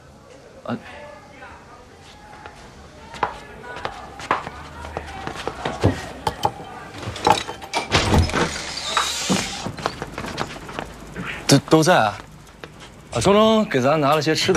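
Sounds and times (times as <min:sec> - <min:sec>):
voices murmuring: 0:00.0 - 0:14.5
speech: 0:00.7 - 0:01.1, 0:11.7 - 0:12.3, 0:13.2 - 0:14.5
footsteps of people coming into the room: 0:02.0 - 0:13.3
door opening with a clatter: 0:05.9 - 0:10.9.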